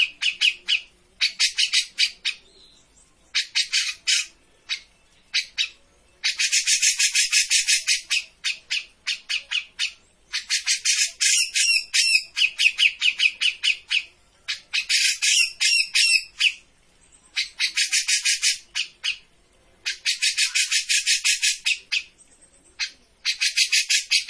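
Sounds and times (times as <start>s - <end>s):
Grey-cheeked bulbul chattering: 0.0s - 24.2s.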